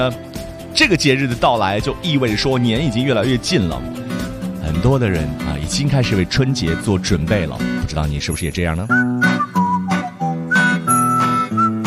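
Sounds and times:
speech: 0.0 - 9.5
steady low instrumental backing: 0.0 - 11.8
whistled melody in a song: 8.8 - 11.8.

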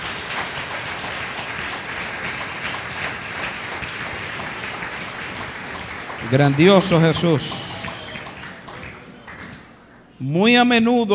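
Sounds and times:
congregation applause in a church service: 0.0 - 10.0
speech: 6.3 - 7.6, 10.2 - 11.1.

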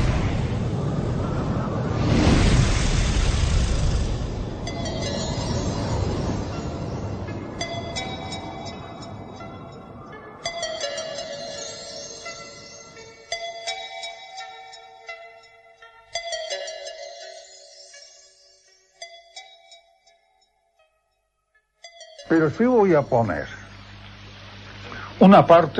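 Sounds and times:
train running on the rails: 0.0 - 11.3
speech: 22.3 - 23.6, 25.2 - 25.7.

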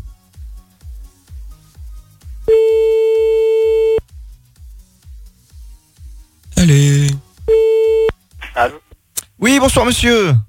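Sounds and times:
outgoing telephone call ringing tone: 2.5 - 4.0, 7.5 - 8.1
speech: 8.6 - 8.8, 9.5 - 10.4.

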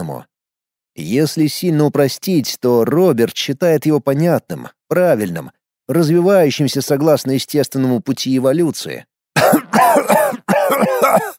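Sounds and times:
speech: 0.0 - 0.3, 1.0 - 11.3
person coughing with harsh throaty hacks: 9.4 - 11.3.

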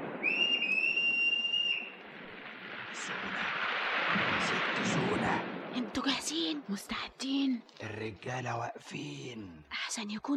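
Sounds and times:
sailors' signal whistle long high-pitched blast: 0.2 - 2.0
speech: 3.1 - 3.5, 4.7 - 10.3.

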